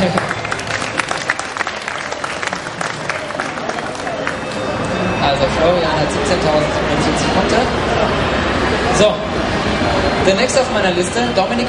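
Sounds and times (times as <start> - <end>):
audience applause: 0.0 - 5.0
faint murmur of voices: 0.0 - 11.6
speech: 5.6 - 8.1, 8.7 - 11.6.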